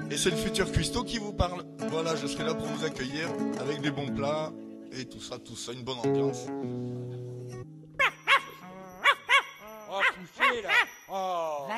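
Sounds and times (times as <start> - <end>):
speech: 0.1 - 7.8, 10.2 - 11.7
dog barking with sharp yelping barks: 8.0 - 10.9.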